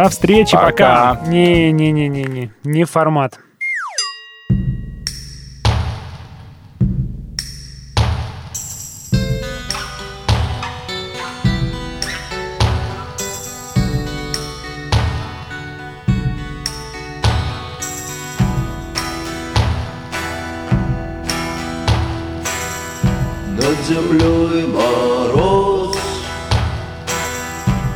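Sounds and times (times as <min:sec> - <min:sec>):
steady punchy drum beat: 0:00.0 - 0:02.3, 0:05.6 - 0:10.8, 0:11.5 - 0:13.0, 0:13.8 - 0:15.3, 0:16.1 - 0:17.6, 0:18.4 - 0:20.0, 0:20.7 - 0:22.3, 0:23.0 - 0:27.1, 0:27.7 - 0:27.9
speech: 0:00.0 - 0:03.4
brief sliding electronic tone: 0:03.6 - 0:04.3.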